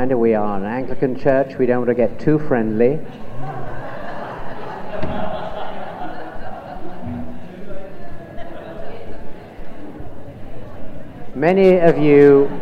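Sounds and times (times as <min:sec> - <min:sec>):
people chatting in small groups at a church gathering: 0:00.0 - 0:03.1, 0:06.0 - 0:12.6
speech: 0:00.0 - 0:03.6, 0:11.4 - 0:12.6
laughter: 0:03.0 - 0:11.3, 0:11.9 - 0:12.6
chairs thudding and scraping as they are turned around: 0:04.8 - 0:05.8, 0:06.9 - 0:07.6.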